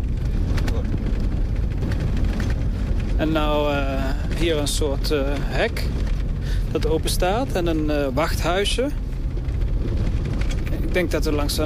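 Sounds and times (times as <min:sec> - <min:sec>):
four-wheel drive car driving on unpaved mountain road: 0:00.0 - 0:11.6
speech: 0:03.2 - 0:06.1, 0:06.7 - 0:09.0, 0:10.9 - 0:11.6.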